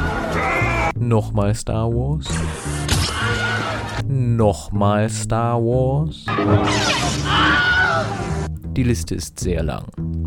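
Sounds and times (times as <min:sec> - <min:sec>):
stock movie male scream: 0:00.3 - 0:00.9, 0:07.1 - 0:08.3
speech: 0:01.0 - 0:03.4, 0:04.1 - 0:07.6, 0:08.8 - 0:10.2
busy crashing action sound effects: 0:06.3 - 0:08.5.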